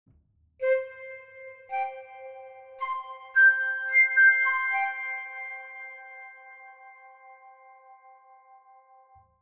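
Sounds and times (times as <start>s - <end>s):
flute: 0.6s - 8.8s.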